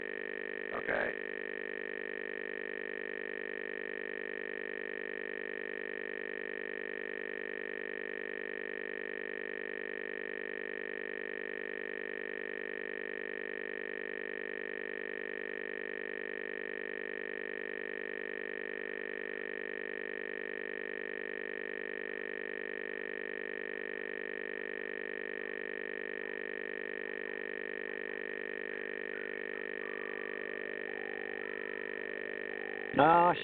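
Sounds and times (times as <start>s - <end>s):
telephone dial tone: 0.0s - 33.0s
speech: 33.0s - 33.4s.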